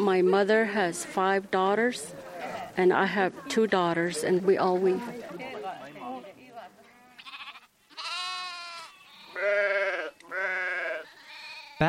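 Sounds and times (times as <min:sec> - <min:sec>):
speech: 0:00.0 - 0:05.5
sheep bleating: 0:05.8 - 0:11.8.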